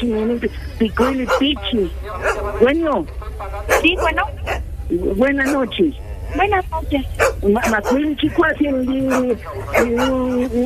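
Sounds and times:
speech: 0.0s - 10.6s
small dog barking and yipping: 1.0s - 1.6s, 2.2s - 2.5s, 3.7s - 4.6s, 5.4s - 5.7s, 7.2s - 8.1s, 9.0s - 10.6s.

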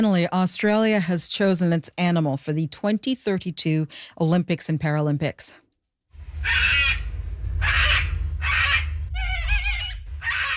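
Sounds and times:
speech: 0.0s - 5.6s, 6.4s - 6.9s
low rumbling background: 6.2s - 10.5s
cockatoo screeching: 6.4s - 10.5s.

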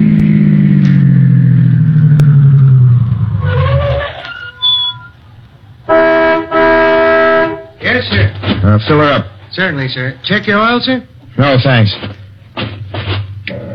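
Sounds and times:
car engine winding down pulling into a gas station: 0.0s - 13.7s
car horn honking: 3.2s - 11.2s
speech: 8.8s - 12.7s.

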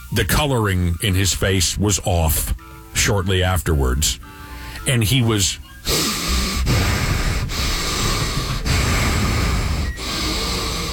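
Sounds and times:
speech: 0.1s - 6.1s
person imitating heavy labored breathing: 5.8s - 10.9s.

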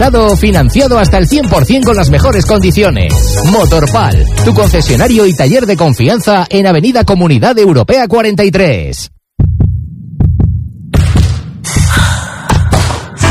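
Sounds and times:
speech: 0.0s - 9.1s
deep booming heartbeat: 9.4s - 13.2s.

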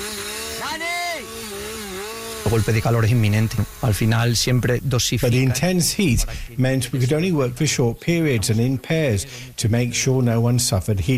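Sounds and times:
chainsaw engine revving while cutting during wildfire fighting: 0.0s - 5.7s
speech: 2.5s - 11.1s.

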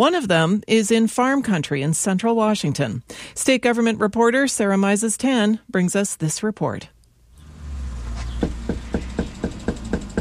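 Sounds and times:
speech: 0.0s - 7.0s
knocking on a house door in Yakima Washington: 8.4s - 10.1s.

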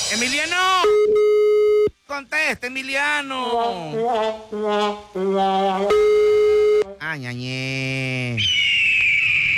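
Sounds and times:
speech: 0.1s - 1.2s, 2.1s - 6.3s, 7.0s - 8.6s
eagle screech: 8.4s - 9.5s.

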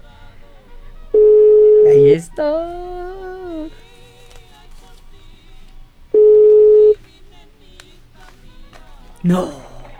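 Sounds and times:
telephone tones while a call is placed and connects: 1.1s - 3.8s, 6.1s - 7.1s
telephone beep: 1.2s - 2.2s, 6.2s - 7.0s
speech: 1.9s - 3.8s, 9.2s - 9.6s.

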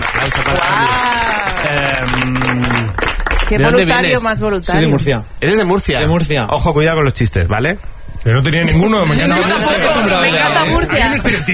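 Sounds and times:
studio audience clapping: 0.0s - 4.4s
speech: 0.3s - 1.2s, 3.5s - 11.5s
studio audience cheering and whooping: 0.4s - 2.9s.

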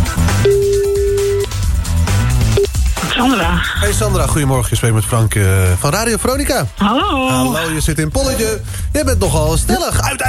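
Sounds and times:
music: 0.0s - 10.2s
phone line ringing on an outgoing call: 0.4s - 1.5s
speech: 3.2s - 10.2s.

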